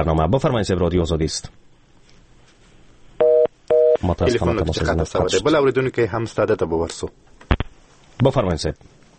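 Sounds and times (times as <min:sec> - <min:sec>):
speech: 0:00.0 - 0:01.6, 0:04.0 - 0:07.4, 0:08.2 - 0:09.0
telephone ring tones as a call comes through on a radio call-in programme: 0:03.2 - 0:04.0.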